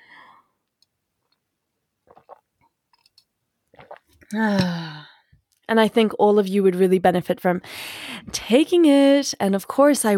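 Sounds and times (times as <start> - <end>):
person sipping tea with soft slurping and clicking mouth sounds: 2.0 - 5.1
speech: 4.3 - 4.9, 5.7 - 10.1.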